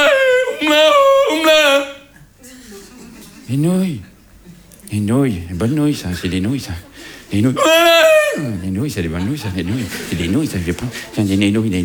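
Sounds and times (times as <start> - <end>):
person belting out a Tyrolean yodel-like song: 0.0 - 2.1, 7.6 - 8.5
laughter: 0.0 - 11.8
speech: 3.5 - 4.1, 4.9 - 11.8.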